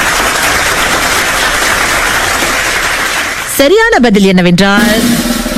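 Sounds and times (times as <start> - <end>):
loud applause of many hands clapping: 0.0 - 3.8
speech: 3.6 - 5.4.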